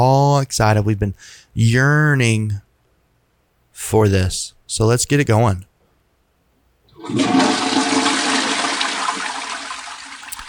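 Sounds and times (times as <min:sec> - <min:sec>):
speech: 0:00.0 - 0:02.6, 0:03.8 - 0:05.7, 0:07.0 - 0:07.6
toilet flushing: 0:06.9 - 0:10.4.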